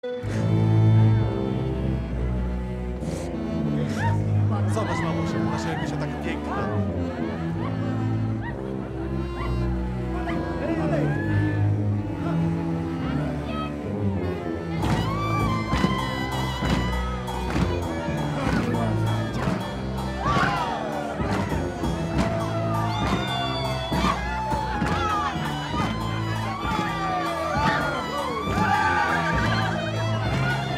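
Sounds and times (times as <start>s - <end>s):
wedding mazurka: 0.0s - 30.7s
laughter: 3.7s - 30.7s.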